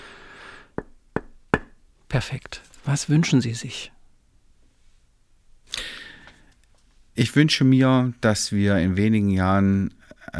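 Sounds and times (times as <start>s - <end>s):
sharp knocks on cross-laminated timber: 0.8s - 1.8s
speech: 2.2s - 4.0s, 7.2s - 10.3s.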